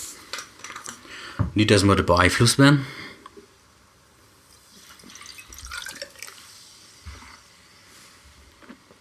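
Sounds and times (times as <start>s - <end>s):
speech: 1.6s - 3.0s
water splashing and trickling while rinsing a drinking glass: 4.8s - 6.4s.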